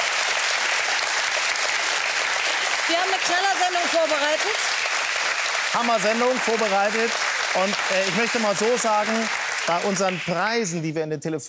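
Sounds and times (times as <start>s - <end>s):
sustained applause from a studio audience: 0.0s - 10.9s
speech: 2.9s - 4.8s, 5.7s - 11.4s.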